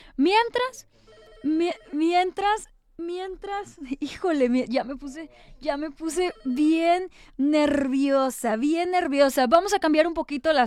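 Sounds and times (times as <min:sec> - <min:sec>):
speech: 0:00.2 - 0:10.6
telephone ringing with an incoming call: 0:01.0 - 0:02.4, 0:06.0 - 0:07.1.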